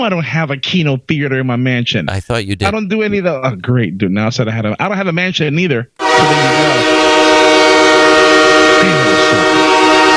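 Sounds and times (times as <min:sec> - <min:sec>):
speech: 0:00.0 - 0:07.1
train horn blaring: 0:06.0 - 0:10.1.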